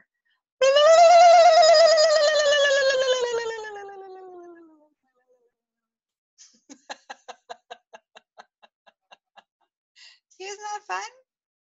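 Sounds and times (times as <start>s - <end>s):
voice imitating a wild turkey call: 0.6s - 4.8s
laughter: 6.7s - 9.5s
speech: 10.9s - 11.2s.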